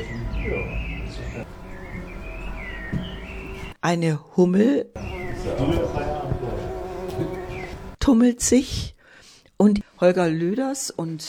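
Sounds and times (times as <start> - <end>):
birds chirping and whistling in a garden heard through an open window: 0.0 - 3.8, 5.0 - 8.0
low indoor hum: 0.0 - 3.8, 5.0 - 8.0
speech: 0.4 - 2.1, 3.8 - 6.2, 8.1 - 8.9, 9.6 - 11.2.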